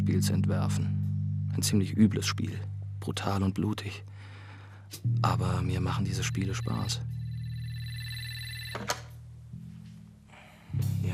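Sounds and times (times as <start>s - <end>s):
low hum: 0.0s - 10.7s
speech: 0.1s - 4.1s, 4.9s - 7.2s, 8.7s - 9.0s
telephone ringing with a steady electronic tone: 6.5s - 9.2s.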